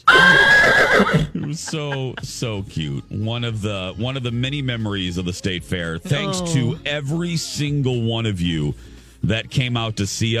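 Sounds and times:
horse whinnying: 0:00.0 - 0:01.4
laughter: 0:01.0 - 0:02.6
speech: 0:01.1 - 0:10.3.

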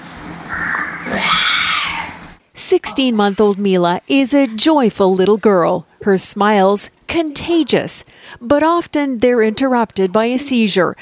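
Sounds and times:
toddler girl imitating a lion's roar: 0:01.0 - 0:02.2
speech: 0:02.7 - 0:11.0.

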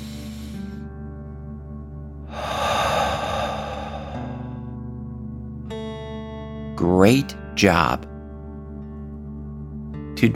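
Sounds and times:
deep breath in and out in a calming breathing exercise: 0:00.0 - 0:01.0, 0:02.2 - 0:05.0
speech: 0:06.8 - 0:08.1, 0:10.2 - 0:10.3.

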